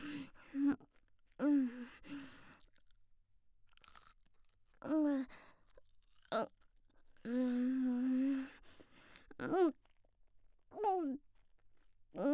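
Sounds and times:
breaths: 0:00.0 - 0:00.6, 0:01.4 - 0:02.7, 0:05.2 - 0:05.7, 0:07.2 - 0:09.4
crunchy chewing of a croquette: 0:02.2 - 0:03.1, 0:03.7 - 0:06.6.

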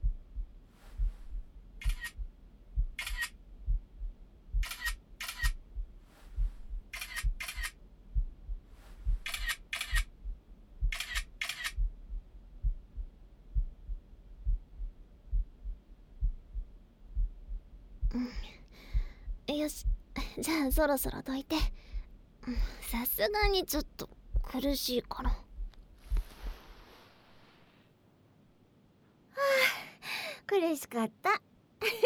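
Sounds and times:
faint steady low heartbeat-like thumping: 0:00.0 - 0:26.9
camera shutter clicks as photos are taken: 0:01.8 - 0:02.2, 0:03.0 - 0:03.3, 0:04.6 - 0:05.6, 0:07.0 - 0:07.8, 0:09.3 - 0:10.1, 0:11.0 - 0:11.8
speech: 0:19.7 - 0:21.8, 0:22.5 - 0:25.4, 0:30.8 - 0:31.3.

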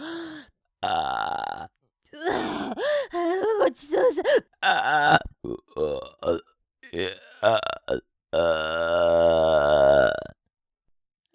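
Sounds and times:
long loud burp after eating: 0:00.8 - 0:02.8, 0:04.6 - 0:10.4
speech: 0:03.7 - 0:05.2.

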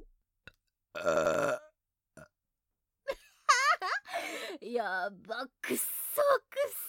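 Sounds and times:
loud burp: 0:00.9 - 0:02.3
speech: 0:01.0 - 0:01.6, 0:04.8 - 0:06.7.

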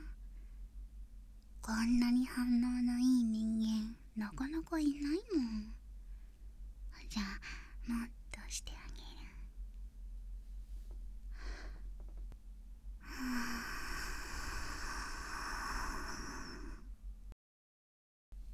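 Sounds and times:
speech: 0:01.7 - 0:05.8
soft breath blown into the ear: 0:13.0 - 0:16.9.

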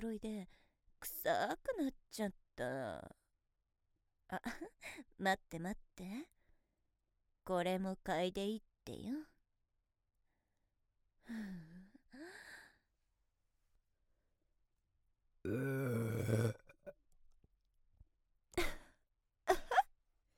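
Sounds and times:
speech: 0:00.0 - 0:03.2, 0:04.3 - 0:06.4, 0:07.5 - 0:09.3, 0:11.3 - 0:12.3, 0:15.4 - 0:16.6
loud drawn-out burp: 0:15.4 - 0:17.0.

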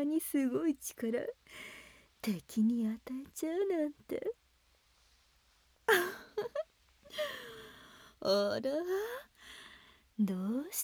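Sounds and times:
speech: 0:00.0 - 0:04.4, 0:05.9 - 0:07.5, 0:08.2 - 0:09.3, 0:10.2 - 0:10.8
person crying and whimpering in breathy bursts: 0:05.9 - 0:07.6.

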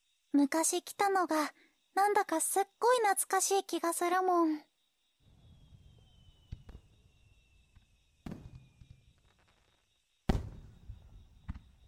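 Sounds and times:
speech: 0:00.3 - 0:04.7
fireworks bursting outdoors: 0:05.3 - 0:11.8.

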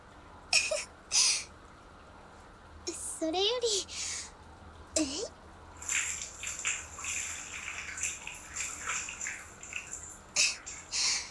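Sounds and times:
speech: 0:03.2 - 0:04.1, 0:05.0 - 0:05.3
water poured and splashed while washing someone's back: 0:05.7 - 0:11.2.

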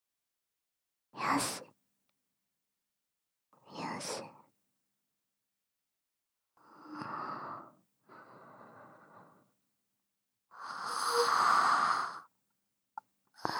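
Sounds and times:
speech: 0:01.2 - 0:01.7
drawn-out breathy yawn late at night: 0:10.7 - 0:12.2.

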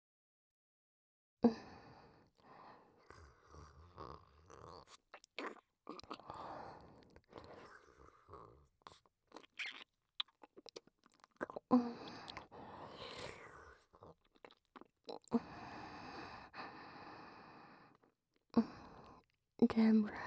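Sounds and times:
quiet breaths: 0:01.4 - 0:05.2, 0:05.9 - 0:09.1, 0:11.6 - 0:14.2, 0:15.2 - 0:20.2
chewing and swallowing food: 0:02.4 - 0:15.5.

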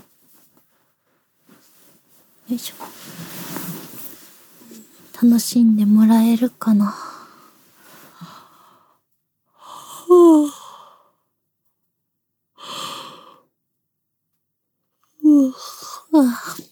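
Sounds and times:
speech: 0:02.5 - 0:03.3, 0:05.2 - 0:07.1
person yawning with breathy exhalations and a groaning vocal tone: 0:10.0 - 0:10.6.

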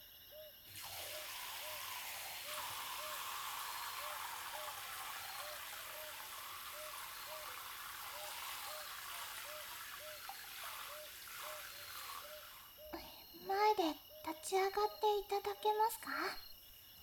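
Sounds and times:
hot water running while rinsing hair: 0:00.7 - 0:12.9
speech: 0:14.5 - 0:16.5.

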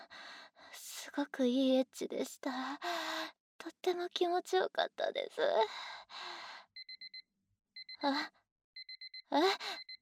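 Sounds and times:
speech: 0:01.1 - 0:03.0, 0:03.6 - 0:06.2, 0:08.0 - 0:08.4, 0:09.3 - 0:09.8
electronic timer alarm beeping: 0:06.8 - 0:07.2, 0:07.8 - 0:08.0, 0:08.8 - 0:10.0.

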